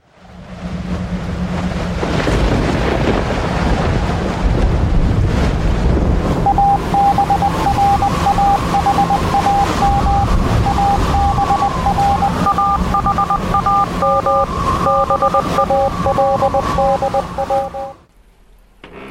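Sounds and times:
strong wind roaring outdoors: 0.3s - 17.4s
faint beeping tone: 6.5s - 18.0s.

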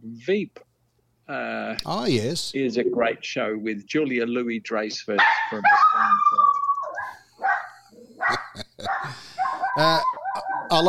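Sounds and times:
speech: 0.2s - 0.7s, 1.3s - 6.6s, 8.3s - 10.8s
dog barking with yips and whiny notes: 5.2s - 6.4s, 7.0s - 10.7s.

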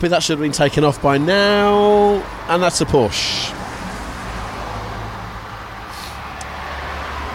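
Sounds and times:
speech: 0.0s - 3.6s
big van engine rumbling while slowing in traffic: 0.0s - 7.3s
traffic noise: 0.0s - 7.3s
brief hiss: 5.9s - 6.2s.

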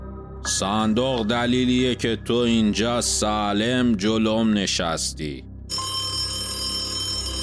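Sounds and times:
speech: 0.4s - 5.5s
telephone ringing with bright electronic tone: 5.7s - 7.4s.

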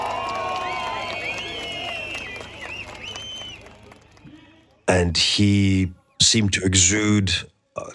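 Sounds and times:
dense roar of crowd cheering: 0.0s - 4.8s
speech: 4.9s - 7.9s.

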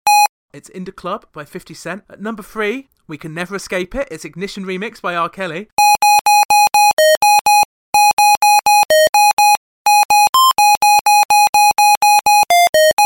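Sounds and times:
speech: 0.6s - 5.8s
synthetic mobile phone ringtone melody: 5.8s - 13.0s.

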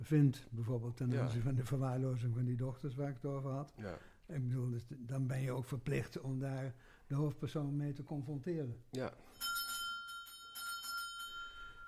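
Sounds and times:
speech: 0.0s - 9.6s
doorbell ringing with bright metallic chimes: 9.3s - 11.8s.

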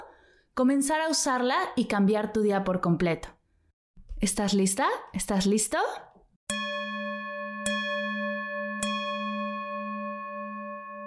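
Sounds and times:
speech: 0.6s - 3.4s, 4.2s - 6.1s
mindfulness bell ringing: 6.5s - 11.0s.

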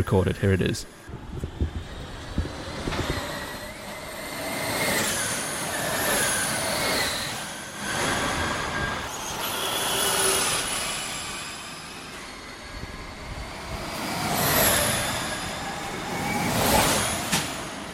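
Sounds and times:
speech: 0.0s - 1.1s
Formula E electric racing cars driving past: 1.8s - 17.8s.

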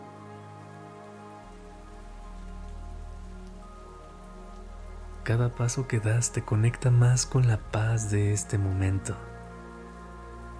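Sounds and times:
calm steady rain falling: 0.0s - 10.5s
faint low rumble: 1.5s - 9.6s
speech: 5.3s - 9.3s.

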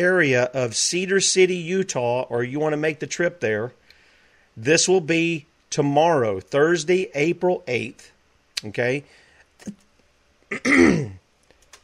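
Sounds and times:
speech: 0.0s - 3.8s, 4.6s - 9.8s, 10.5s - 11.2s
person with a short throaty rasping cough: 10.5s - 11.2s.

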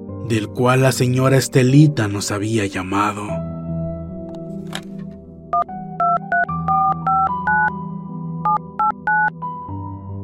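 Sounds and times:
speech: 0.2s - 3.6s
telephone dial tone: 5.6s - 7.7s, 8.4s - 9.3s
touch-tone keypresses dialing a number: 6.0s - 7.7s.

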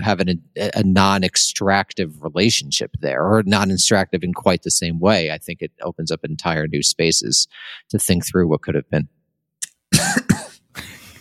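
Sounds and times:
speech: 0.0s - 9.2s, 10.0s - 10.9s
person coughing: 9.6s - 11.1s.

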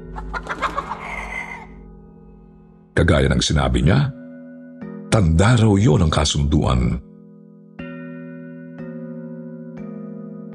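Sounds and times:
two chickens clucking: 0.0s - 1.7s
speech: 0.2s - 0.6s, 3.0s - 4.2s, 5.2s - 7.1s.

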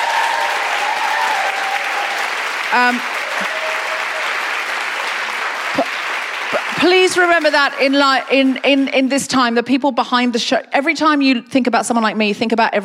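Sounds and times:
person cheering or whooping: 0.0s - 4.4s
applause from a large audience: 0.0s - 9.0s
speech: 2.7s - 3.6s, 6.8s - 12.8s.

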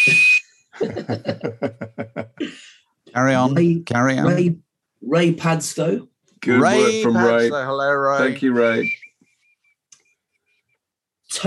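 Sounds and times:
shrill bosun's whistle blast: 0.0s - 0.6s
speech: 0.0s - 2.6s, 3.2s - 9.0s
rhythmic pulsing laughter: 0.8s - 2.6s.

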